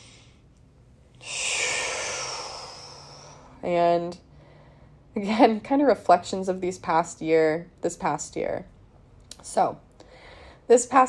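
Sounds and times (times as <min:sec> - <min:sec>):
deep breath before reading aloud: 0:00.0 - 0:00.5, 0:01.2 - 0:03.6, 0:04.3 - 0:05.1, 0:10.0 - 0:10.7
speech: 0:03.6 - 0:04.3, 0:05.2 - 0:08.7, 0:09.4 - 0:09.8, 0:10.7 - 0:11.0.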